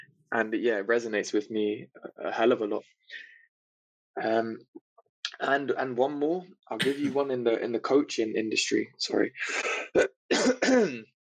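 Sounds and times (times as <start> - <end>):
speech: 0.3 - 3.3, 4.2 - 4.8, 5.4 - 11.1
person clearing throat with raspy hacks: 6.8 - 7.2, 9.5 - 11.0.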